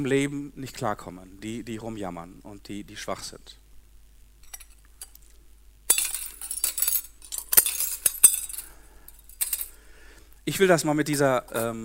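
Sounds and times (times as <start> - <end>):
speech: 0.0 - 3.6, 10.4 - 11.8
glass pieces clinking and scraping as they are handled in a demonstration: 4.4 - 5.2, 5.9 - 9.8.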